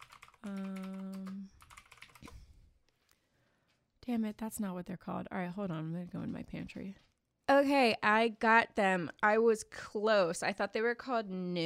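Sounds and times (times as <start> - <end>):
computer keyboard typing: 0.0 - 2.5
speech: 0.4 - 0.8, 4.1 - 11.6.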